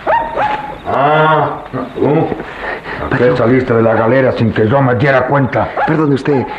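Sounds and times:
coyote yelping and howling: 0.0s - 2.3s, 3.7s - 4.5s, 5.6s - 6.5s
speech: 3.1s - 6.5s.

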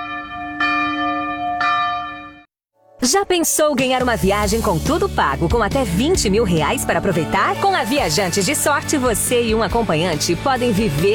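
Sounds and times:
resonant bell strikes with sustained overtones: 0.0s - 2.4s
speech: 3.0s - 11.1s.

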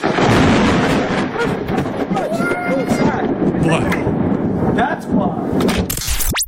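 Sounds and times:
thunder crack from nearby lightning strike: 0.0s - 6.1s.

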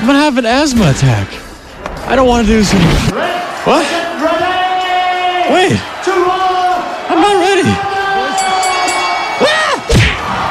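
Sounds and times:
speech: 0.0s - 1.4s, 2.1s - 4.4s, 5.5s - 6.6s, 7.2s - 7.8s
large crowd cheering after knockout: 0.4s - 10.4s
heavy thump: 0.5s - 3.1s.

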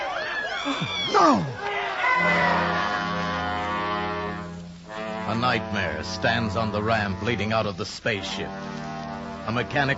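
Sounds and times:
crowd crying out in alarm: 0.0s - 3.4s
speech: 0.6s - 2.9s, 5.3s - 8.8s, 9.5s - 9.9s.

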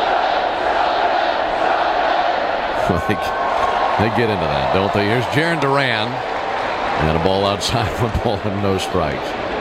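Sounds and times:
huge stadium crowd singing together: 0.0s - 3.5s
speech: 2.9s - 3.4s, 4.0s - 6.4s, 7.0s - 9.5s.

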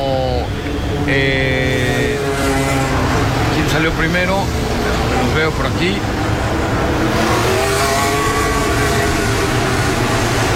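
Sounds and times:
McLaren Formula 1 car engines whining leaving Miami Grand Prix qualifying: 0.0s - 10.5s
speech: 1.0s - 1.4s, 3.8s - 4.7s, 5.4s - 6.3s.

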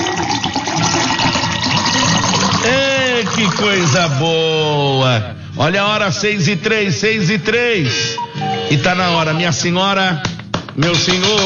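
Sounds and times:
water pouring steadily into a glass: 0.0s - 4.2s
speech: 3.5s - 11.4s.

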